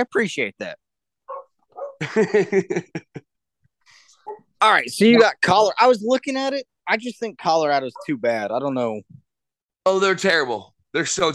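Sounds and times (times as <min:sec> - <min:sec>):
speech: 0:00.0 - 0:00.8, 0:02.0 - 0:03.3, 0:04.6 - 0:09.2, 0:09.8 - 0:11.3
dog yelping and barking: 0:01.3 - 0:02.0, 0:04.2 - 0:04.5, 0:07.9 - 0:08.2
laughter: 0:02.0 - 0:03.3.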